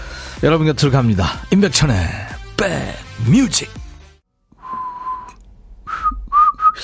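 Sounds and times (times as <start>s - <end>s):
speech: 0.4s - 3.8s
whistled melody in a song intro: 4.6s - 6.8s.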